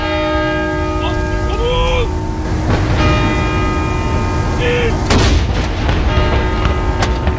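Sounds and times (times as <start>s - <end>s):
church bells ringing: 0.0s - 7.3s
artillery mourning gun salute fired by the Norwegian Armed Forces: 5.1s - 5.8s.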